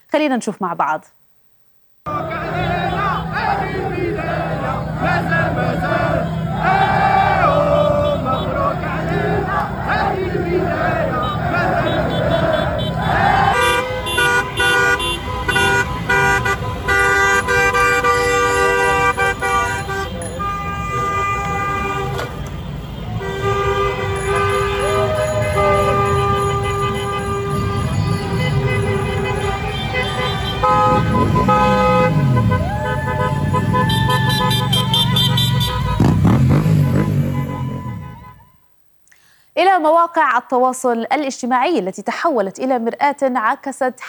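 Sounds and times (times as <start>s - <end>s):
speech: 0.2s - 1.2s, 39.6s - 44.0s
crowd cheering and chanting at a street celebration: 2.1s - 14.2s, 23.0s - 37.0s
car engine noise: 2.1s - 38.0s
car horns honking: 2.1s - 38.8s.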